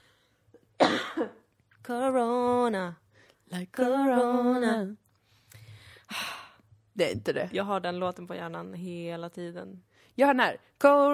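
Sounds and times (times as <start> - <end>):
harsh raspy cough: 0.8 - 1.4
speech: 1.9 - 5.0, 7.0 - 11.1.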